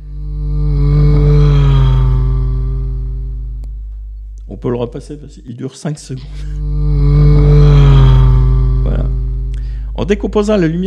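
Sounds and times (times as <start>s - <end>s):
vehicle engine roaring past with Doppler pitch shift: 0.0s - 3.7s, 6.6s - 9.6s
speech: 4.6s - 6.8s, 10.0s - 10.8s.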